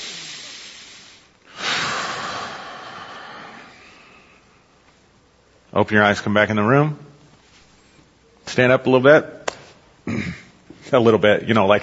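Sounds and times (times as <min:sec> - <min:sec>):
deep breathing during a guided meditation or prayer: 0:00.0 - 0:04.8
speech: 0:05.8 - 0:07.0, 0:08.6 - 0:09.4, 0:10.1 - 0:11.8.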